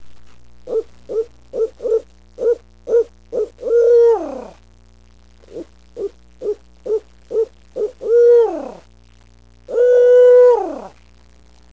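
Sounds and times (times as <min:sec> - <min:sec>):
owl hooting: 0:00.7 - 0:04.6, 0:05.4 - 0:08.9, 0:09.7 - 0:11.0.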